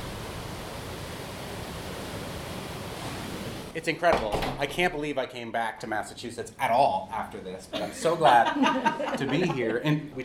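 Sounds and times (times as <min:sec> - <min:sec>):
ocean surf roaring through an open door: 0:00.0 - 0:03.8
speech: 0:03.8 - 0:10.2
laughter: 0:07.7 - 0:10.2.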